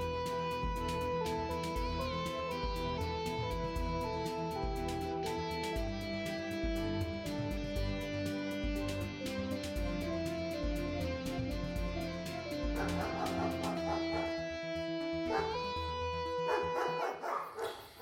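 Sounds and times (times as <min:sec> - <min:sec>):
steady droning musical bed: 0:00.0 - 0:17.9
two large dogs barking: 0:12.6 - 0:15.7, 0:16.4 - 0:17.9.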